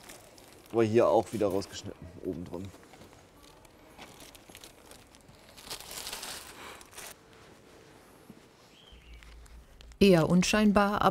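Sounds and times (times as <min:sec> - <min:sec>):
plastic bag crinkling and rustling beside a public trash bin: 0:00.0 - 0:01.8, 0:02.6 - 0:10.0
speech: 0:00.7 - 0:02.9, 0:10.0 - 0:11.0.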